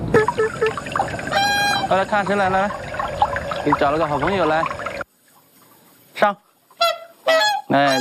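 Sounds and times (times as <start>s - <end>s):
swan honking: 0.1s - 2.2s, 6.7s - 7.9s
speech: 1.9s - 2.9s, 3.7s - 4.8s, 6.2s - 6.5s, 7.7s - 7.9s.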